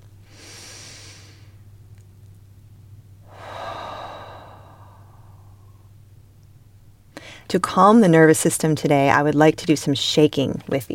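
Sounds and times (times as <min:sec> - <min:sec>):
steady low hum: 0:00.0 - 0:10.9
deep breath during a guided relaxation session: 0:00.2 - 0:01.6, 0:03.2 - 0:05.9, 0:07.2 - 0:07.5
speech: 0:07.5 - 0:10.9.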